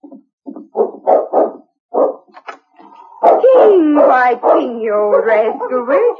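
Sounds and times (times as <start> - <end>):
dog barking at the door: 0.7 - 2.3, 3.1 - 6.1
speech: 3.8 - 6.1.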